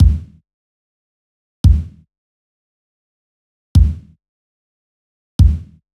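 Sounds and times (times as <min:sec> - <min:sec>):
tight kick drum one shot: 0:00.0 - 0:00.3, 0:01.7 - 0:02.0, 0:03.8 - 0:04.1, 0:05.4 - 0:05.7.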